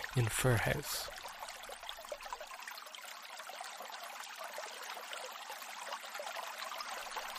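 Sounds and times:
small stream trickling over stones at a mountain river source: 0.0s - 7.3s
speech: 0.2s - 1.2s.

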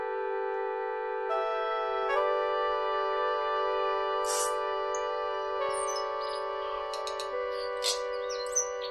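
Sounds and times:
sustained electronic chords: 0.0s - 8.9s
tui-like bird chirps, clicks and whistles: 4.3s - 5.1s, 5.7s - 8.9s.

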